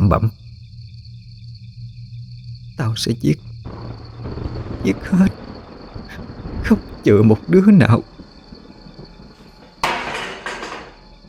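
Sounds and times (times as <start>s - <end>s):
speech: 0.1s - 0.4s, 2.8s - 3.5s, 4.8s - 5.4s, 6.1s - 8.1s
dishes and glass crashing from a kicked-over dining table: 9.8s - 11.0s.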